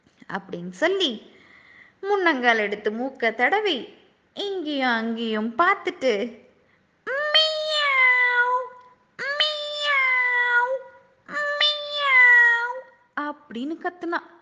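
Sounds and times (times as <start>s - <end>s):
speech: 0.3s - 1.3s, 2.0s - 6.4s, 13.5s - 14.4s
voice imitating a kitten's meowing: 7.1s - 13.0s.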